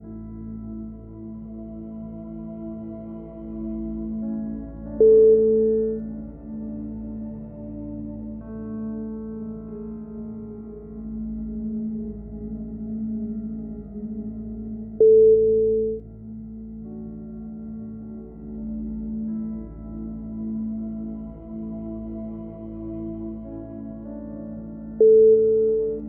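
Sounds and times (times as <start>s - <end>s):
peaceful background piano music: 0.0s - 26.0s.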